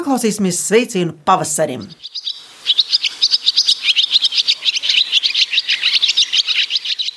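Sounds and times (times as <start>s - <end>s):
speech: 0.1s - 2.3s
barn swallow twittering: 1.6s - 7.1s.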